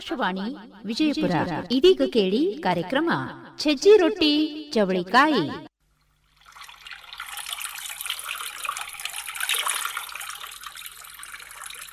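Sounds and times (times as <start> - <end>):
speech: 0.0 - 5.7
water running from a tap: 6.1 - 11.9.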